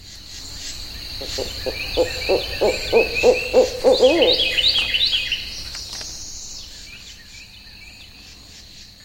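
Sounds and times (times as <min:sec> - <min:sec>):
chirping birdsong in a Florida swamp: 0:00.0 - 0:09.0
steady high insect drone in a Florida swamp: 0:00.0 - 0:09.0
frogs giving low hooting or croaking calls in a Florida swamp: 0:00.5 - 0:06.9.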